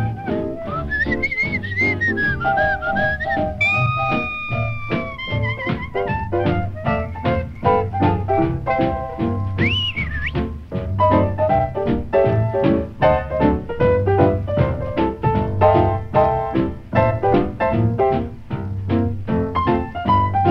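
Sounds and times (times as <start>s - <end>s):
person whistling a bright wandering melody: 0.0s - 7.2s, 9.6s - 10.6s
musical backing with a rhythmic low pulse: 0.0s - 20.5s.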